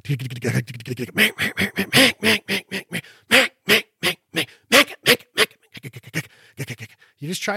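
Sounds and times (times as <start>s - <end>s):
speech: 0.1s - 2.4s, 7.4s - 7.5s
duck call imitating mallard hen quacks, lonesome hen calls and greeting calls: 1.2s - 5.6s.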